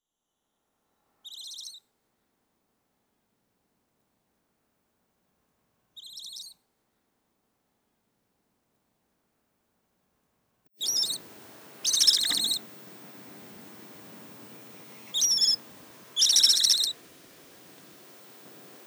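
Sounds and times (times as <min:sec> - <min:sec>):
whistle: 0:10.8 - 0:11.2, 0:11.8 - 0:12.6, 0:15.0 - 0:15.6, 0:16.2 - 0:17.0.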